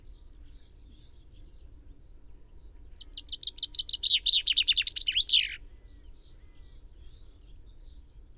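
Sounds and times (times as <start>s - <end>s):
Common chaffinch Fringilla coelebs singing: 3.0s - 5.6s.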